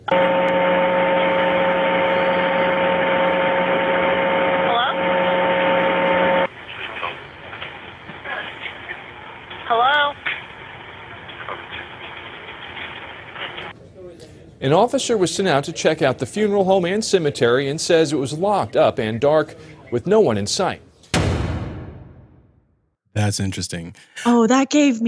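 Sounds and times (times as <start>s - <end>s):
static hiss on a recorded phone call line: 0.0s - 13.7s
faint droning tone on a phone line: 0.1s - 6.5s
speech: 14.7s - 20.9s, 23.3s - 25.0s.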